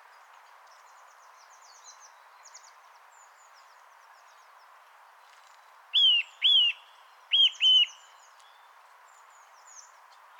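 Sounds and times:
Eurasian nuthatch Sitta europaea whistled calls: 0:06.0 - 0:08.1.

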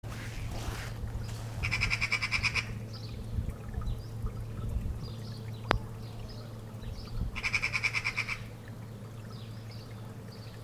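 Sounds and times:
low steady hum: 0:00.0 - 0:10.6
Eurasian magpie Pica pica chattering: 0:01.6 - 0:02.8, 0:07.4 - 0:08.5.

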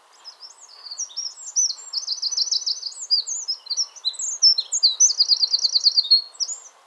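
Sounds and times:
Eurasian wren Troglodytes troglodytes singing: 0:00.2 - 0:06.8.

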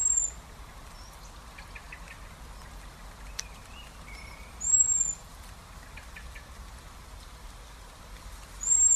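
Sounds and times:
faint chirps and ticks: 0:00.0 - 0:08.9
common blackbird Turdus merula thin high drawn-out whistle: 0:03.5 - 0:05.2, 0:08.6 - 0:08.9.

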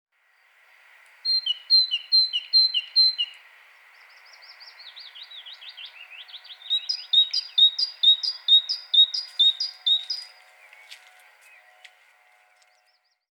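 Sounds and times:
great tit calls, Parus major: 0:00.4 - 0:12.9.

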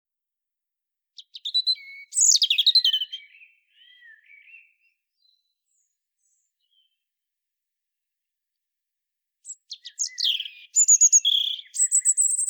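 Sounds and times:
European robin singing: 0:01.2 - 0:07.0, 0:09.4 - 0:12.4.

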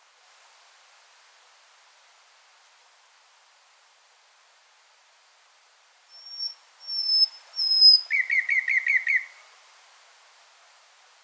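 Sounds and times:
common nightingale Luscinia megarhynchos singing: 0:06.1 - 0:09.5.

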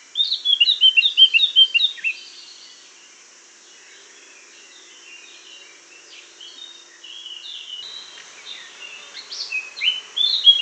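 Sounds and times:
Eurasian blackcap Sylvia atricapilla song with twittering and warbling: 0:00.0 - 0:02.8, 0:06.4 - 0:10.5.

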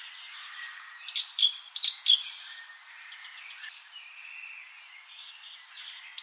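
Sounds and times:
Great tit Parus major chirping calls: 0:00.0 - 0:03.9, 0:05.6 - 0:06.2
faint background bird notes: 0:00.0 - 0:06.2.

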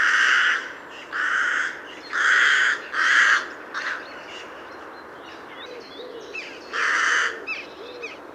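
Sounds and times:
Carrion crow Corvus corone giving rasping caws: 0:00.0 - 0:04.0, 0:06.8 - 0:07.4.

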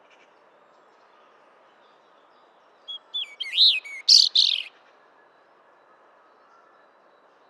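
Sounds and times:
European robin song, Erithacus rubecula: 0:02.9 - 0:04.8.

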